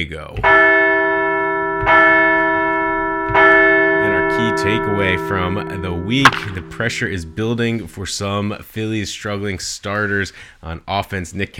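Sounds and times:
speech: 0.0 - 0.8, 1.8 - 2.2, 4.4 - 11.5
bell ringing: 0.9 - 7.7.

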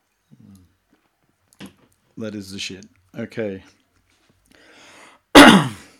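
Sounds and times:
speech: 2.2 - 3.8
loud harsh cough and throat clearing: 5.3 - 5.9.

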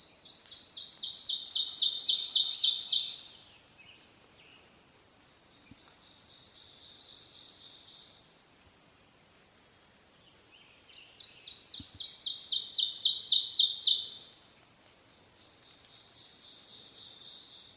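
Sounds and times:
Ovenbird song of repeated teacher notes: 0.6 - 3.2, 11.2 - 14.1.

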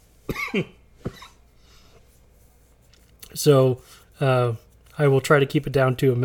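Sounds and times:
harsh person coughing: 0.3 - 1.4
speech: 0.5 - 1.2, 3.4 - 6.2.

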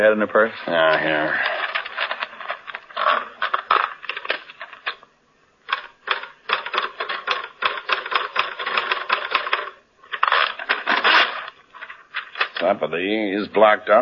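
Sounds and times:
speech: 0.0 - 1.6, 12.7 - 14.0
manual typewriter keys clacking: 0.8 - 5.0, 5.7 - 11.5.

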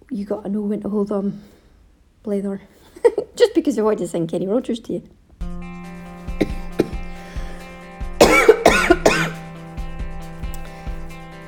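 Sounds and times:
speech: 0.2 - 1.6, 2.2 - 5.2
throat clearing: 6.4 - 7.2, 8.2 - 9.4
person with a chest complaint coughing harshly: 6.4 - 7.6, 8.2 - 9.4.

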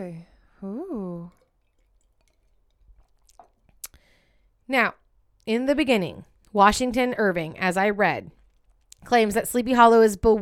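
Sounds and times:
speech: 0.0 - 1.4, 4.7 - 8.4, 9.0 - 10.4
person swallowing: 0.8 - 4.0
soft wet mouth sounds: 1.2 - 4.1
person sipping wine: 1.2 - 4.5.

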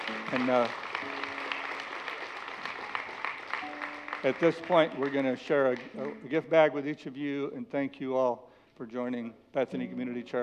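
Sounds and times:
church congregation applauding new members: 0.0 - 6.5
speech: 0.3 - 0.9, 4.2 - 10.4.

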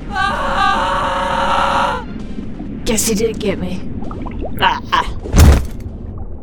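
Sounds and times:
woman letting out a loud high-pitched scream: 0.0 - 2.1
speech: 2.9 - 4.0, 4.6 - 5.1.

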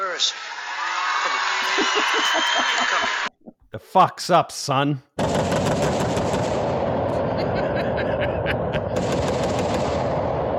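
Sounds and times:
speech: 0.2 - 0.6, 1.2 - 6.1
laughter: 1.3 - 4.0, 7.1 - 9.0
rapid automatic gunfire sound effect: 5.2 - 7.4, 8.8 - 10.5.

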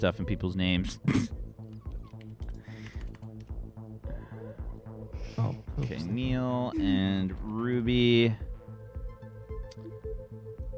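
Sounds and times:
speech: 0.0 - 1.4, 5.4 - 8.5
typing on a water-damaged computer keyboard: 1.7 - 3.5.

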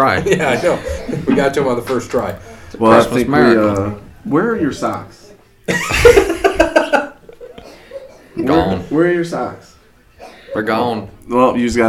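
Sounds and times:
laughter: 0.0 - 2.2, 5.7 - 8.9
speech: 0.0 - 6.2, 8.4 - 9.7, 10.6 - 11.8
raspy coughing in a house: 0.4 - 1.5, 5.7 - 8.8, 10.2 - 10.8.

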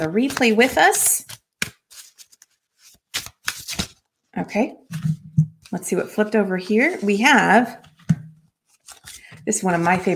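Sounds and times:
speech: 0.0 - 1.4, 4.4 - 7.9, 9.5 - 10.1
deck of oracle cards being shuffled: 0.0 - 4.1, 7.8 - 10.1.

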